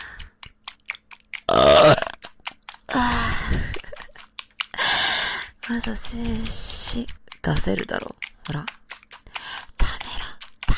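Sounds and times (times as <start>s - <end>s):
faint short clicks and mouth sounds: 0.0s - 10.7s
loud low drawn-out burp: 1.5s - 2.2s
speech: 5.8s - 8.8s.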